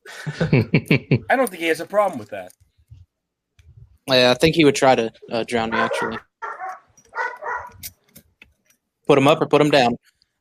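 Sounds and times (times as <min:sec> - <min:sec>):
laughter: 0:00.1 - 0:01.3
speech: 0:00.2 - 0:02.6, 0:04.1 - 0:06.3, 0:09.1 - 0:10.4
dog barking: 0:05.7 - 0:07.8
faint dog yip: 0:05.8 - 0:07.8.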